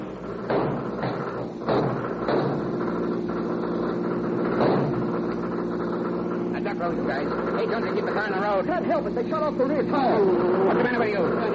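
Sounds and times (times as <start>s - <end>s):
getaway car engine drone during a chase: 0.0s - 11.5s
voices talking: 6.3s - 11.5s.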